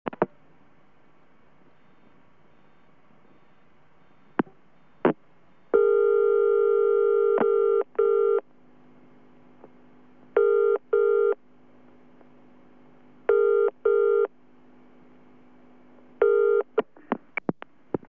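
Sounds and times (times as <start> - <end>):
standard telephone ring: 5.8 - 8.4, 13.3 - 14.3, 16.2 - 16.7
telephone line tones: 5.8 - 8.4, 10.4 - 11.4, 13.3 - 14.3, 16.2 - 16.7.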